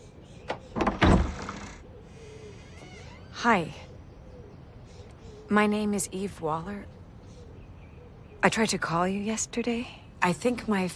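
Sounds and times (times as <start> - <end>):
front door of a stately ivy-covered house being opened: 0.4 - 1.8, 2.5 - 3.6
speech: 3.4 - 3.8, 5.5 - 7.0, 8.4 - 10.9.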